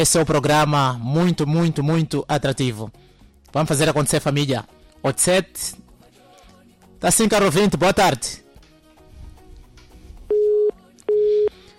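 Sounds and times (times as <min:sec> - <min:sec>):
speech: 0:00.0 - 0:05.8, 0:07.0 - 0:08.4
telephone busy tone beeps after a dropped call: 0:10.3 - 0:11.6.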